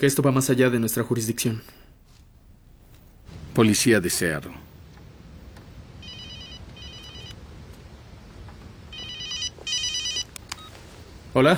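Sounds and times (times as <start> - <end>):
speech: 0.0 - 1.9, 3.6 - 4.7, 11.4 - 11.5
steady fairly quiet noise: 0.0 - 11.5
telephone ringing with an incoming call in trilling electronic double rings: 6.0 - 7.5, 8.9 - 11.1.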